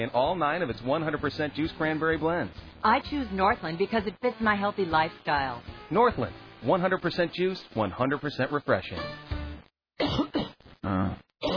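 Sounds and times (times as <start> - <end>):
speech: 0.0 - 9.3
harsh coughing from a person in bed at night: 10.0 - 10.6.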